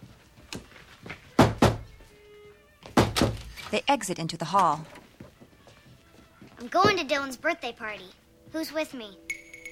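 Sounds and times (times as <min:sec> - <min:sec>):
knocking on bedroom doors with a lacrosse stick: 0:01.3 - 0:01.9, 0:02.8 - 0:03.4
speech: 0:03.7 - 0:05.0, 0:06.6 - 0:09.2.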